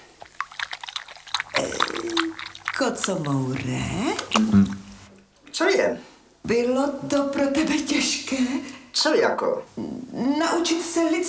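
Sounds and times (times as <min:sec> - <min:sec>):
drips and taps: 0:00.0 - 0:04.8
milk poured into a bowl and spilling over: 0:00.0 - 0:04.8
speech: 0:02.1 - 0:04.8, 0:05.7 - 0:11.2.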